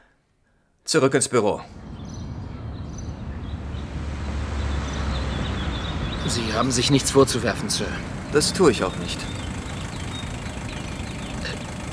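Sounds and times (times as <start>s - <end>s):
speech: 0.9s - 1.8s, 6.3s - 9.5s
car engine idling: 1.6s - 11.9s.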